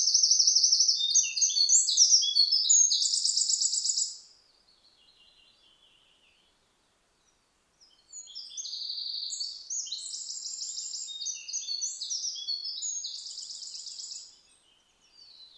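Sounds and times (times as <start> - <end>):
Eurasian wren Troglodytes troglodytes singing high rapid trills: 0.0 - 4.3, 8.1 - 14.5.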